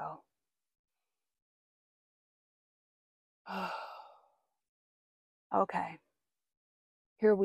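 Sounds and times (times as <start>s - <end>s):
speech: 3.5s - 3.9s, 5.5s - 6.0s, 7.2s - 7.4s
deep breath with sighing exhale: 3.5s - 4.3s.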